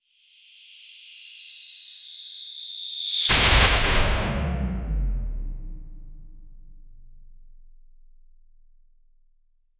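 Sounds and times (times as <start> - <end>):
lantern construct energy whoosh: 3.3 - 5.5.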